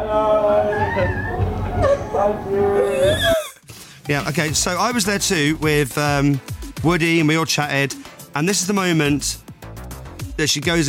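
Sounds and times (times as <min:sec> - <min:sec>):
speech: 0:00.1 - 0:03.3, 0:04.1 - 0:09.4, 0:10.4 - 0:10.8
person letting out a muffled excited whimper: 0:01.8 - 0:03.6.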